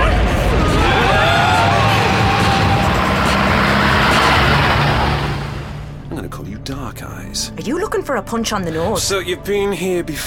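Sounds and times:
taxi engine roaring and revving while racing through traffic: 0.1s - 6.1s
screeching road noise: 0.8s - 5.8s
speech: 8.1s - 10.2s.

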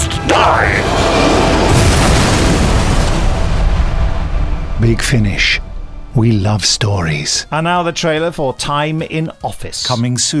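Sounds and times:
missile strike explosion in a sci-fi audio drama: 0.3s - 7.9s
speech: 4.9s - 10.3s.

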